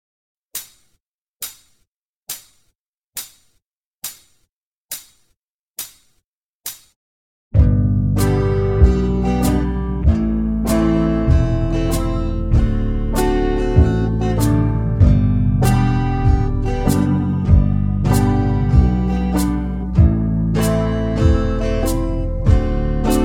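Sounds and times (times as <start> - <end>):
backing track in the key of G: 7.6 - 23.2.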